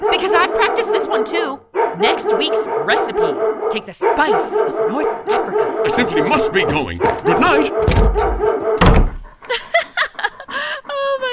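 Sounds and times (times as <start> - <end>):
dog barking: 0.0 - 11.3
speech: 1.5 - 8.4
heavy thud: 6.7 - 9.4
laughter: 9.4 - 11.3.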